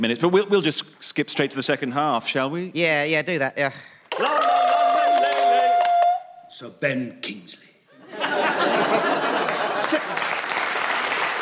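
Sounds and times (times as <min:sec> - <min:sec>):
speech: 0:00.0 - 0:04.6, 0:06.6 - 0:07.7
audience applause: 0:04.2 - 0:06.2, 0:08.9 - 0:11.4
people chuckling: 0:07.9 - 0:10.2.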